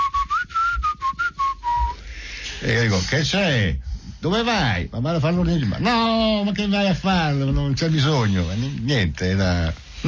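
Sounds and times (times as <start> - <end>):
person whistling a family call signal: 0.0 - 2.0
speech: 2.6 - 10.0.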